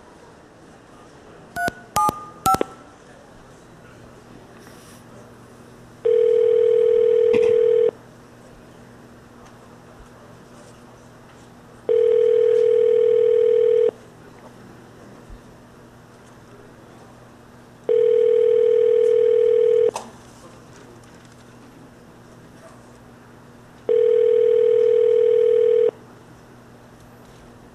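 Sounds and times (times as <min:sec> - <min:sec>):
faint hum: 0:00.0 - 0:27.7
long steady telephone tones: 0:01.6 - 0:02.9, 0:06.0 - 0:08.0, 0:11.9 - 0:13.9, 0:17.9 - 0:19.9, 0:23.9 - 0:26.0
touch-tone keypad beeps: 0:01.6 - 0:02.9.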